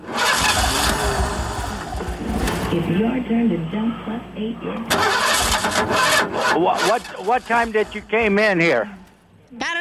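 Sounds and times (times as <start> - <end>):
car engine with bad gas cranking but failing to start: 0.0 - 3.0, 4.9 - 8.2
speech: 2.7 - 9.7.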